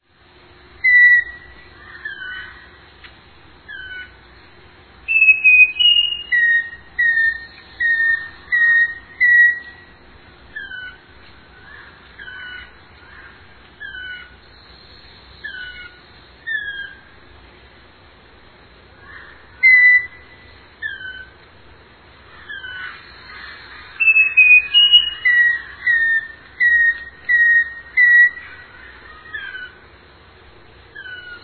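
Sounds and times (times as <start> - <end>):
uirapuru-veado calling: 0.7 - 3.0, 3.6 - 17.3, 19.0 - 21.4, 22.2 - 30.0, 30.9 - 31.4.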